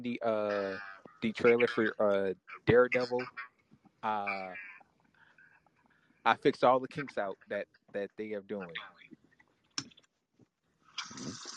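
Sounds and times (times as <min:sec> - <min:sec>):
laughter: 0:00.0 - 0:03.2, 0:04.1 - 0:04.5, 0:06.3 - 0:08.7
speech: 0:00.0 - 0:04.7, 0:06.2 - 0:09.0
water being poured: 0:11.0 - 0:11.5.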